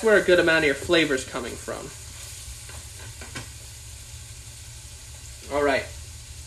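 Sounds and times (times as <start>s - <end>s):
speech: 0.0s - 2.0s, 5.5s - 5.9s
ground meat and onions sizzling in a pan: 0.0s - 6.4s.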